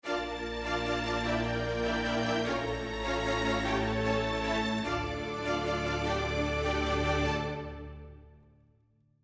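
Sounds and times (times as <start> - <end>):
lush strings with reverb: 0.0 - 8.4.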